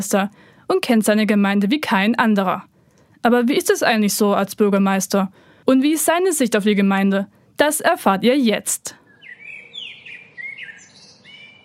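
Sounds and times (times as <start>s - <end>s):
speech: 0.0s - 9.0s
soft steady hiss: 0.0s - 9.2s
birds chirping outdoors in a village: 9.0s - 11.6s.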